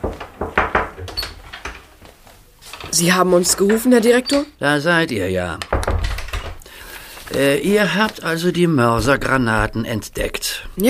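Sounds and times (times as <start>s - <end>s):
door opening into a school headmaster's office: 0.0s - 2.0s, 2.7s - 4.6s, 5.6s - 6.6s
speech: 3.0s - 5.7s, 7.3s - 10.8s.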